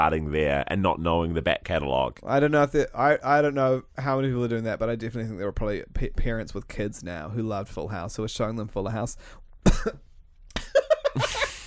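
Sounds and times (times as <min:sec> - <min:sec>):
speech: 0:00.0 - 0:10.1, 0:10.7 - 0:11.4
person coughing harshly with crisps stuck in the throat: 0:09.6 - 0:10.1.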